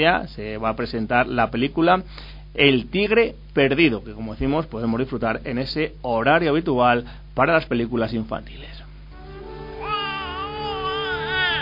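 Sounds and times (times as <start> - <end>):
speech: 0.0 - 8.8
infant crying: 9.4 - 11.5.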